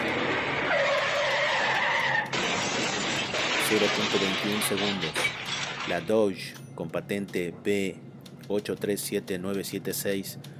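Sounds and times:
Chevrolet pickup truck tires squealing and skidding: 0.0s - 6.0s
road noise: 0.0s - 6.2s
Chevrolet pickup truck ramming a car head-on: 0.0s - 6.3s
speech: 3.7s - 10.5s.

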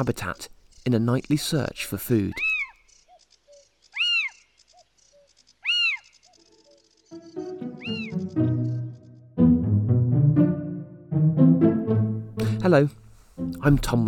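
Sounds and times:
speech: 0.0s - 2.6s, 12.7s - 14.0s
little owl high-pitched rising-and-falling calls: 2.3s - 9.0s
music: 7.2s - 14.0s.

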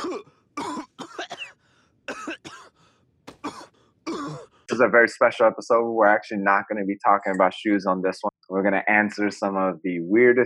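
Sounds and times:
person clearing throat: 0.0s - 1.5s, 2.1s - 2.7s, 3.3s - 4.6s
person coughing: 0.0s - 4.6s
speech: 4.8s - 10.4s.

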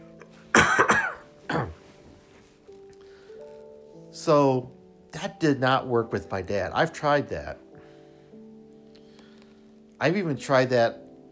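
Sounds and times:
harsh coughs: 0.5s - 1.8s
speech: 4.2s - 7.6s, 10.0s - 11.3s.

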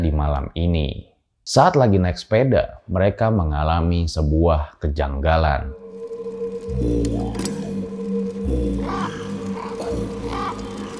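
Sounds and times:
speech: 0.0s - 5.8s, 6.7s - 7.5s
eerie bird-like night call: 5.6s - 10.9s.

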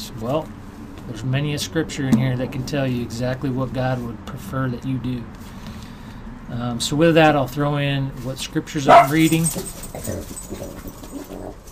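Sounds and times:
speech: 0.1s - 5.5s, 6.5s - 11.1s
dogs barking and yipping: 8.9s - 11.7s.

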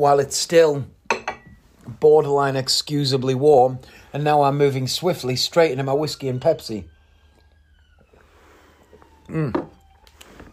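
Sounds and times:
speech: 0.0s - 1.0s, 1.9s - 6.9s, 9.3s - 9.7s
ambulance siren passing by: 2.7s - 10.5s.

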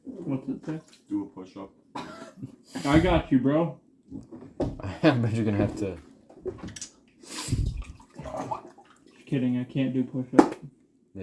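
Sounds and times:
speech: 0.3s - 6.9s, 9.3s - 10.6s
water dripping and trickling: 7.5s - 9.5s.

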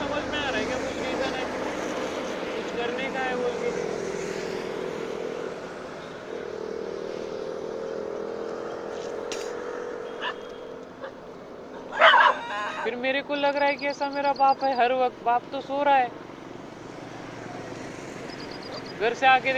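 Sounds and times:
steady engine-like hum: 0.0s - 19.5s
dog following behind a person barking: 10.1s - 12.8s, 18.5s - 19.0s
faint dog yips: 10.2s - 12.9s
laughter: 11.8s - 13.2s
speech: 13.0s - 16.2s, 19.0s - 19.5s.

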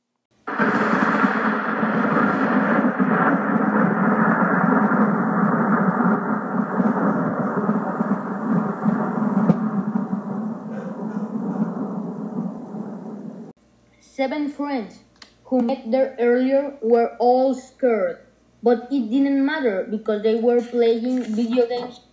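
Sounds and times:
thunder rumbling from a big storm: 0.3s - 13.6s
cold wind: 0.5s - 13.6s
speech: 14.2s - 22.1s.

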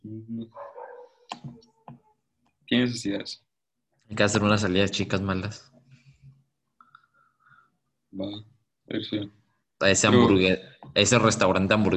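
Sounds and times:
dog barking in short bursts: 0.5s - 1.2s
speech: 2.8s - 3.4s, 4.1s - 5.7s, 8.2s - 11.9s.

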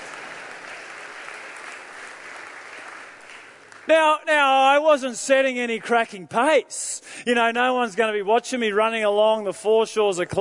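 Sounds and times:
crowd applauding: 0.0s - 3.9s
speech: 3.9s - 10.3s.

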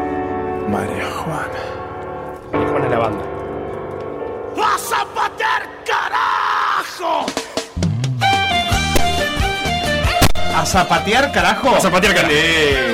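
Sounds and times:
speech: 0.7s - 1.8s, 2.5s - 3.4s, 4.6s - 6.1s, 10.6s - 12.9s
loud raw shouts like a battle cry: 4.5s - 7.8s
song with a deep bass line: 7.8s - 10.6s.

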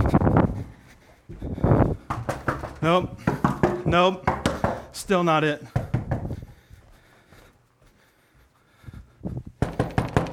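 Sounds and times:
knocking on a door: 2.0s - 4.9s, 5.7s - 6.3s, 9.6s - 10.3s
speech: 2.8s - 4.4s, 5.0s - 5.7s.

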